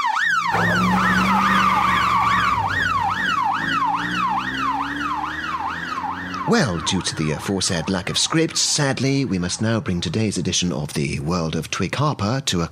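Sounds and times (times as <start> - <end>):
police car siren wailing: 0.0 - 10.1
police car engine rumble: 0.3 - 12.0
speech: 6.5 - 12.7.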